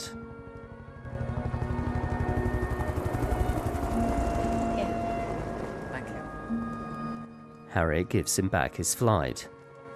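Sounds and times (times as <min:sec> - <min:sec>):
army helicopter rotor chop over a desert wadi: 0:01.1 - 0:06.9
speech: 0:07.8 - 0:09.6.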